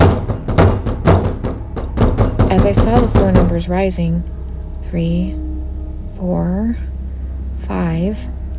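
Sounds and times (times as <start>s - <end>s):
forceful banging on a metal elevator door: 0.0s - 3.8s
speech: 2.5s - 5.5s, 6.2s - 6.9s, 7.6s - 8.4s.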